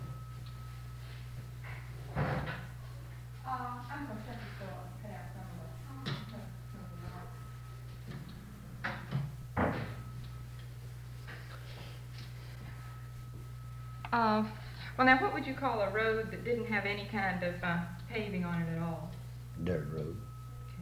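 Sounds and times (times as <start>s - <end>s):
steady low hum: 0.0s - 20.8s
door being shut: 8.9s - 10.0s
speech: 14.2s - 20.2s.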